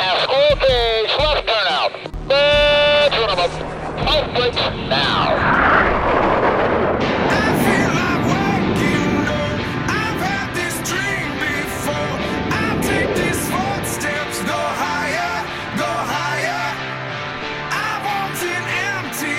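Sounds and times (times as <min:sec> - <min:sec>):
radio-style voice chatter clearing an aircraft for takeoff: 0:00.0 - 0:05.7
jet engines spooling up for takeoff: 0:02.3 - 0:19.3.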